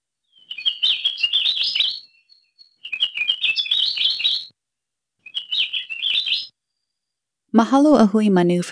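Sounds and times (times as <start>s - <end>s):
ʻAkiapōlāʻau Hawaiian honeycreeper calling: 0.3s - 4.5s, 5.2s - 6.6s
speech: 7.6s - 8.7s.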